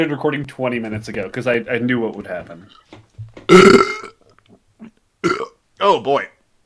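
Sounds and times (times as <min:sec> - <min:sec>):
speech: 0:00.0 - 0:03.9, 0:05.8 - 0:06.4
person belching: 0:03.5 - 0:04.2, 0:05.2 - 0:05.6.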